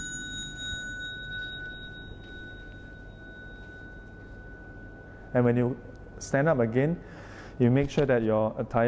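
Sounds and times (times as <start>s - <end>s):
bell rung as the signal to rise from prostration during a ceremony: 0.0s - 5.7s
speech: 5.3s - 8.8s.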